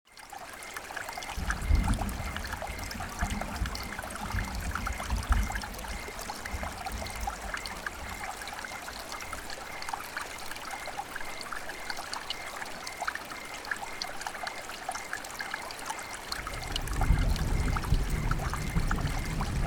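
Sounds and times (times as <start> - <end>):
relaxing rain: 0.1 - 19.6
thunder: 1.4 - 8.3, 16.4 - 19.6.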